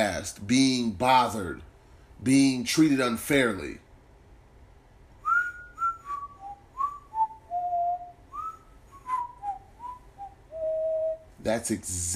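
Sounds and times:
speech: 0:00.0 - 0:03.8, 0:11.4 - 0:12.1
faint low hum: 0:00.0 - 0:12.1
person whistling a casual wandering tune: 0:05.2 - 0:11.3.

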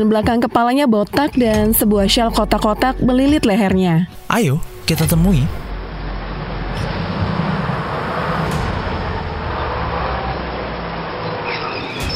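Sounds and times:
speech: 0:00.0 - 0:05.6
car driving along a road beside a railway station: 0:05.7 - 0:12.1.

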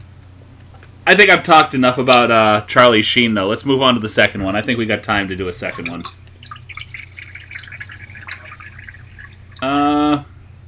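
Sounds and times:
speech: 0:01.1 - 0:06.2, 0:09.6 - 0:09.8
water pouring into a glass: 0:05.6 - 0:10.1.

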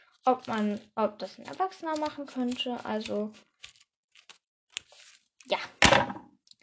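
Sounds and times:
speech: 0:00.2 - 0:03.7
scissors snipping zigzags into a stiff paper bag: 0:00.3 - 0:05.3.

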